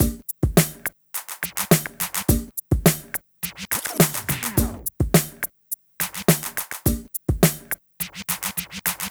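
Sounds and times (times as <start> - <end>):
club R&B drum beat: 0.0 - 9.0.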